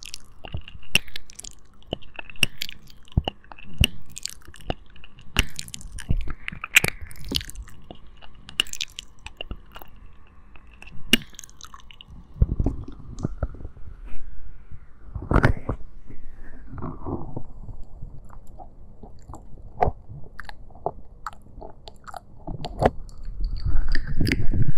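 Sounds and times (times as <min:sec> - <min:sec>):
heavier chewing thumps: 0:00.0 - 0:10.0, 0:10.6 - 0:13.6, 0:18.2 - 0:24.5
wet mouth clicks: 0:00.0 - 0:10.0, 0:10.6 - 0:13.4, 0:20.4 - 0:24.7
sharp crunchy bites: 0:00.0 - 0:13.5, 0:18.2 - 0:24.6.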